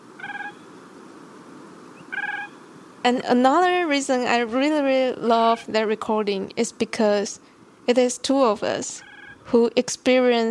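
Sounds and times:
hiss: 0.0s - 10.4s
Siberian cranes calling in flight over the Siberian tundra: 2.0s - 6.7s, 7.9s - 9.6s
speech: 3.0s - 10.4s.

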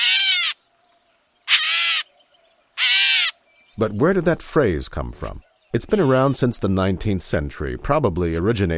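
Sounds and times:
gray catbird harsh nasal mewing calls: 0.0s - 0.6s, 1.4s - 2.1s, 2.8s - 3.4s, 5.8s - 6.4s
speech: 3.8s - 8.7s.

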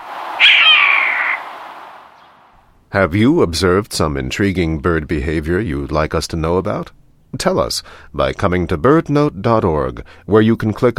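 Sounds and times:
Steller's jay harsh raspy scream imitating a hawk: 0.0s - 1.6s
speech: 2.9s - 10.9s.

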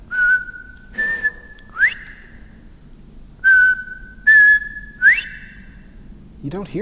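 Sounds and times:
faint low noise: 0.0s - 6.8s
lone male quail whistle call: 0.1s - 2.6s, 3.4s - 5.9s.

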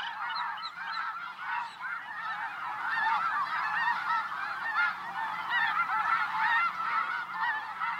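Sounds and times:
huge flock of snow geese calling: 0.0s - 7.9s.

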